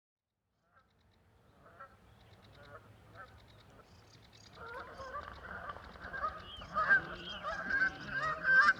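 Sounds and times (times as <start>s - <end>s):
Canada goose chorus honking: 4.6s - 8.7s.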